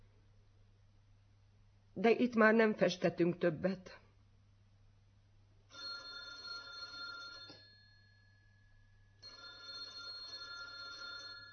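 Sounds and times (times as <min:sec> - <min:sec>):
low steady hum: 0:00.0 - 0:11.5
speech: 0:02.0 - 0:04.0
telephone bell ringing: 0:05.7 - 0:11.5.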